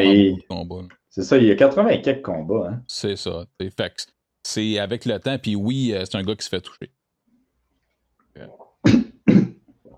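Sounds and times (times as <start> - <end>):
speech: 0.1 - 7.0, 8.4 - 9.4
person coughing: 8.8 - 9.7.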